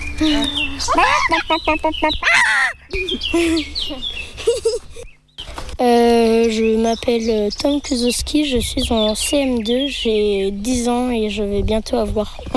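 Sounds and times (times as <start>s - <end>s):
speech: 0.2s - 5.0s, 5.8s - 12.5s
child imitating a hen cackling after laying an egg: 0.9s - 2.8s.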